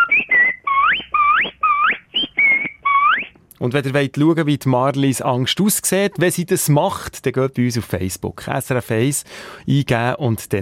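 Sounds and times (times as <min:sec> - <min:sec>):
human whistle calling someone to lunch: 0:00.0 - 0:03.4
speech: 0:03.6 - 0:10.5.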